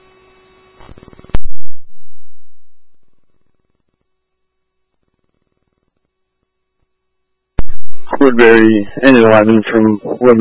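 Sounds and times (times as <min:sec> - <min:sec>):
radio burst and crackle over a scanner: 0:00.8 - 0:03.2, 0:07.6 - 0:10.4
speech: 0:08.2 - 0:10.4.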